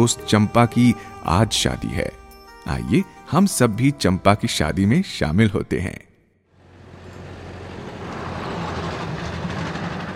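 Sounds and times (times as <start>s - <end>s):
speech: 0.0s - 6.1s
car driving along a road: 6.6s - 10.1s.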